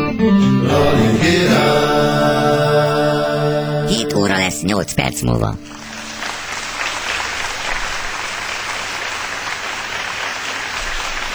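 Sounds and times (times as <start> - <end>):
speech: 0.2 - 3.2, 3.9 - 5.8
crowd clapping: 3.9 - 11.3.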